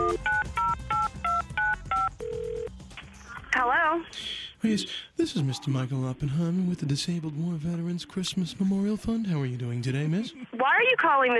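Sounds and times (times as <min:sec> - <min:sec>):
telephone keypad dialing tones: 0:00.0 - 0:02.7
speech: 0:04.0 - 0:11.3.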